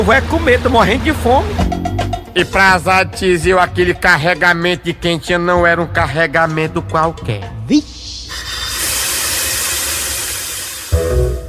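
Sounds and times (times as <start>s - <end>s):
speech: 0.0s - 1.7s, 2.4s - 8.0s
heavy truck air brakes hissing: 8.0s - 11.0s.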